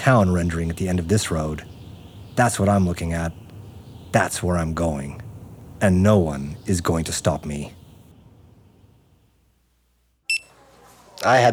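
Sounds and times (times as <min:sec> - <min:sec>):
speech: 0:00.0 - 0:01.8, 0:02.4 - 0:03.4, 0:04.1 - 0:05.2, 0:05.8 - 0:07.8, 0:11.2 - 0:11.5
low rumble: 0:00.0 - 0:09.9
kitchen timer short sharp electronic beep: 0:10.3 - 0:10.5.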